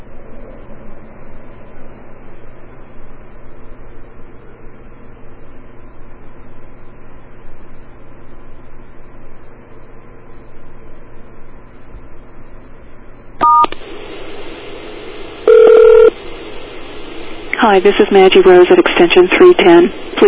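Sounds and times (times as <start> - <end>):
telephone keypad tones over a phone line: 13.4 - 13.7, 15.5 - 16.1
hissy phone line: 13.4 - 20.2
speech: 17.6 - 20.2.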